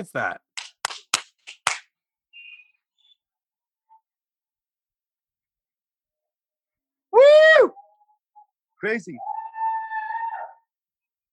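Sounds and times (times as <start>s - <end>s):
speech: 0.0s - 0.5s, 7.2s - 7.8s, 8.8s - 9.4s
sharp claps or bangs: 0.6s - 1.9s
faint chirp: 2.3s - 3.3s.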